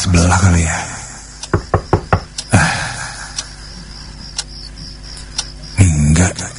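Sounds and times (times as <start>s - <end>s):
speech: 0.1s - 0.9s
faint taps: 1.4s - 2.4s
knuckles knocking on a bedroom door: 1.5s - 2.4s.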